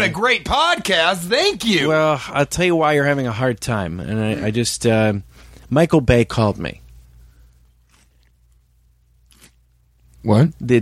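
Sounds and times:
speech: 0.0 - 6.8, 10.2 - 10.7
low steady hum: 0.0 - 10.7
crunchy chewing on snap peas: 7.6 - 10.2.

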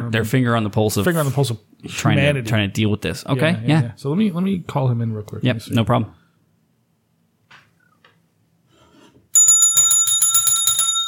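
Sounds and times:
speech: 0.1 - 6.2
bell ringing with a bright metallic trilling tone: 9.4 - 11.0.

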